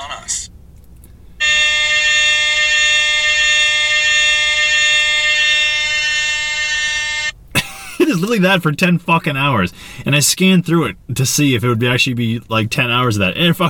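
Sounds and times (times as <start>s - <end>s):
loud harsh air horn blaring: 1.4s - 7.3s
speech: 8.3s - 13.6s.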